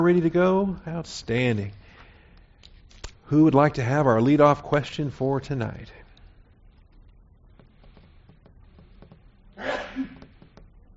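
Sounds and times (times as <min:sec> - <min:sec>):
speech: 0:00.0 - 0:01.8, 0:03.3 - 0:06.0
person sneezing: 0:09.6 - 0:10.2.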